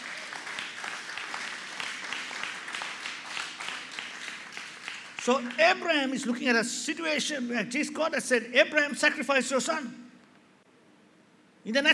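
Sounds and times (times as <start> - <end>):
large crowd applauding during a sermon: 0.0 - 5.6
speech: 5.2 - 10.0, 11.7 - 11.9.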